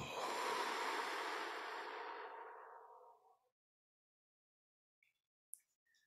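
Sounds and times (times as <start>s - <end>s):
long deep breath exhaled: 0.0s - 3.3s.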